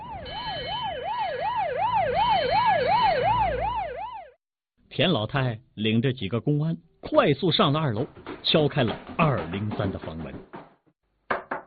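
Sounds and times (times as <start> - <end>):
police car siren wailing in up-and-down sweeps: 0.0 - 4.4
speech: 5.0 - 10.6.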